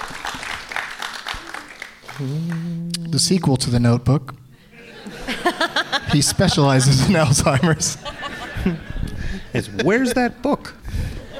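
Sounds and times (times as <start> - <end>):
group applauding: 0.0 - 3.4
speech: 2.2 - 4.4, 6.1 - 8.9, 9.5 - 10.8
laughter: 4.6 - 11.3.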